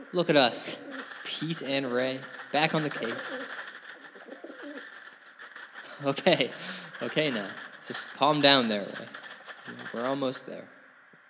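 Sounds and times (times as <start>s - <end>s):
pigeon cooing: 0.0s - 10.2s
steady hiss: 0.0s - 11.2s
speech: 0.1s - 3.6s, 6.0s - 10.8s
laughter: 0.4s - 3.4s, 5.8s - 9.1s.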